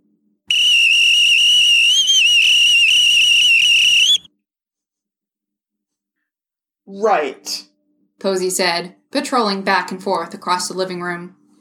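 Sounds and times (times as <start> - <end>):
loud shrill lifeguard whistle blast with slight warble: 0.5 - 4.3
speech: 6.9 - 7.6, 8.2 - 11.4.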